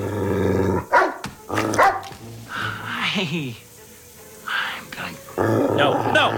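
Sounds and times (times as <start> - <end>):
dog growling: 0.0 - 2.9, 5.2 - 6.3
dog barking: 0.8 - 2.2
speech: 3.2 - 3.7, 5.4 - 6.3.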